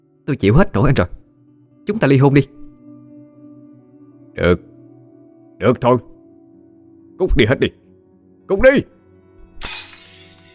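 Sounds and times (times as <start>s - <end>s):
speech: 0.3s - 1.2s, 1.9s - 2.6s, 4.4s - 4.7s, 5.6s - 6.1s, 7.2s - 7.8s, 8.5s - 9.0s
dishes and pots smashed: 9.6s - 10.5s.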